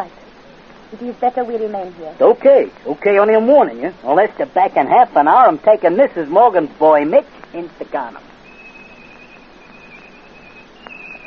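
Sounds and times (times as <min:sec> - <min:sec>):
speech: 0:00.0 - 0:00.2, 0:00.9 - 0:08.3
hissy background: 0:00.0 - 0:11.2
person whistling one long steady high note as a signal: 0:08.4 - 0:11.2.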